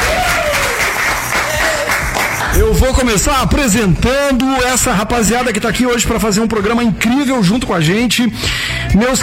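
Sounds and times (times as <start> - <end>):
audience applause at a live show: 0.0 - 2.8
speech: 2.6 - 9.2.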